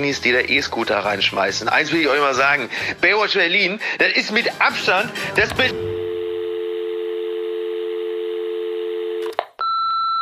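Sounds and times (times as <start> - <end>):
speech: 0.0 - 5.9
steady continuous telephone tone: 5.9 - 10.1.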